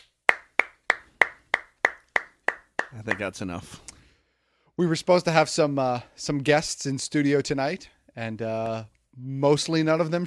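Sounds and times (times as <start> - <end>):
hand claps: 0.0 - 3.3
speech: 2.9 - 3.9, 4.8 - 10.2.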